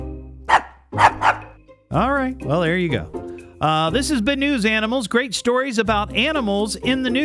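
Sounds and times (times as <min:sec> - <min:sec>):
dog barking: 0:00.5 - 0:01.6
speech: 0:02.0 - 0:07.2.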